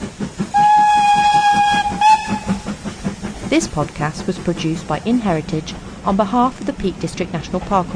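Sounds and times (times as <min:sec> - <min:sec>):
departing train rhythmic low chuffing: 0:00.0 - 0:07.9
departing train whistle: 0:00.5 - 0:02.7
speech: 0:03.5 - 0:07.9.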